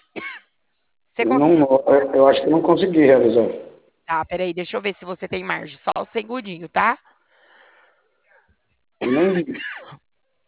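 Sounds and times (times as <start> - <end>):
person coughing: 0.0 - 0.5, 9.0 - 10.0
speech: 1.2 - 7.1, 9.0 - 10.0.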